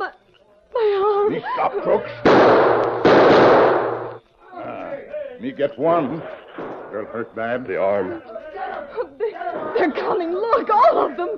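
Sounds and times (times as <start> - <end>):
laughter: 1.3 - 2.2, 8.4 - 11.3
speech: 1.3 - 3.6, 5.4 - 8.4, 9.8 - 11.3
gunshot in a radio drama: 2.3 - 4.2.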